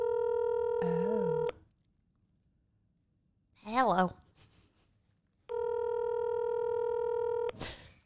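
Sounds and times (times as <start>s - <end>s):
electronic phone ringing tone for an outgoing call: 0.0s - 1.6s, 5.5s - 7.5s
speech: 3.9s - 4.2s.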